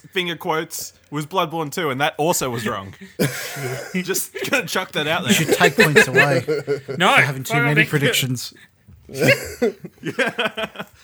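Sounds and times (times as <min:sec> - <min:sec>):
speech: 0:00.0 - 0:11.0
laughter: 0:02.4 - 0:08.4, 0:09.0 - 0:11.0
person coughing: 0:03.1 - 0:04.6, 0:09.1 - 0:09.8.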